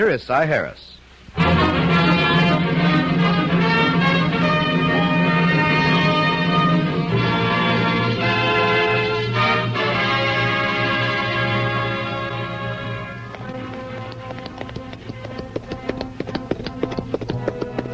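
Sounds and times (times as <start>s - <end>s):
speech: 0.0s - 2.2s
sustained musical chord: 1.4s - 15.9s
horse hooves galloping down a village street: 13.2s - 17.9s.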